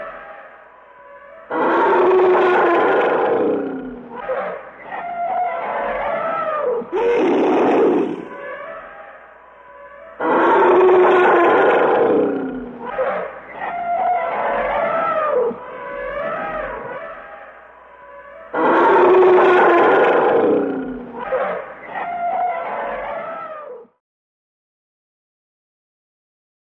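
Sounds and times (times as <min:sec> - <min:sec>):
elephant vocalizing with wavering brassy calls: 0:01.5 - 0:08.6, 0:10.2 - 0:23.6.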